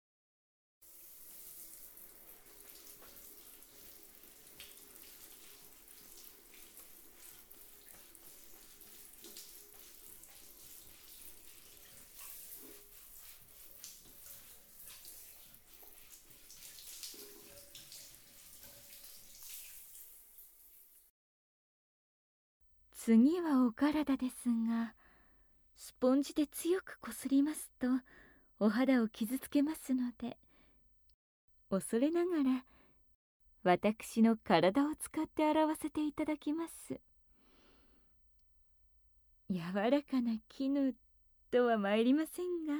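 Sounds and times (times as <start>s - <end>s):
shower spraying water rinsing off soap foam: 0.8s - 21.1s
speech: 23.1s - 25.0s, 25.9s - 30.4s, 31.7s - 32.8s, 33.6s - 37.1s, 39.5s - 42.7s.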